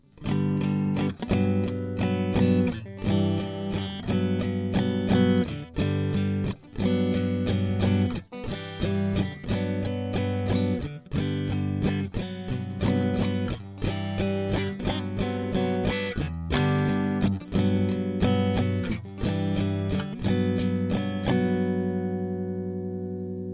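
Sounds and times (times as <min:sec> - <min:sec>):
guitar playing G Gmaj7 G6 Gmaj7 chords: 0:00.0 - 0:23.5.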